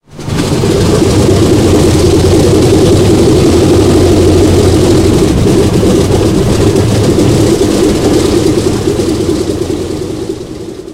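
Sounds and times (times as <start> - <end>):
engine starting heard from right side of cockpit: 0.1 - 9.5.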